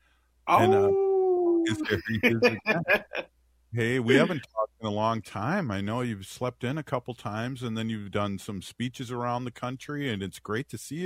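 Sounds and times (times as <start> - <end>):
laughter: 0.5 - 0.9, 1.7 - 3.2, 3.8 - 4.4
speech: 0.5 - 1.0, 1.7 - 11.0
person imitating a wolf howl: 0.5 - 1.8.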